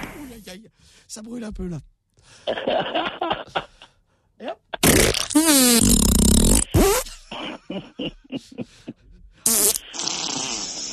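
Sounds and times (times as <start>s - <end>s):
speech: 0.4s - 3.7s, 4.4s - 10.1s
fart sound effect: 4.8s - 7.1s, 9.5s - 10.9s.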